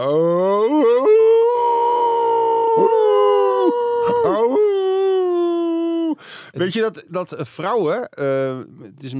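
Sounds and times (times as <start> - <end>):
speech: 0.0 - 0.7, 6.6 - 9.1
person imitating a wolf howl: 0.0 - 6.2.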